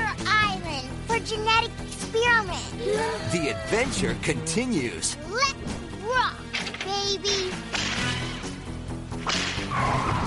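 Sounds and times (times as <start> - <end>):
loud driving orchestral movie trailer music: 0.0 - 10.2
speech: 1.3 - 6.4, 7.1 - 7.8
whip crack: 9.2 - 9.7.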